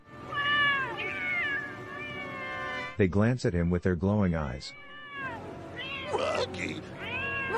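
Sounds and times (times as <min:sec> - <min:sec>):
several cats meowing: 0:00.2 - 0:03.0, 0:04.7 - 0:07.5
speech: 0:03.0 - 0:04.9.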